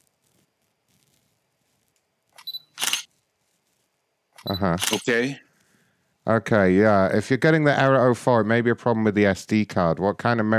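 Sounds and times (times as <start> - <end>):
Canon camera shutter whir and click: 2.3 - 3.1, 4.3 - 5.3
Canon camera shutter snap: 2.4 - 3.1, 4.4 - 5.1
speech: 4.4 - 5.5, 6.3 - 10.5.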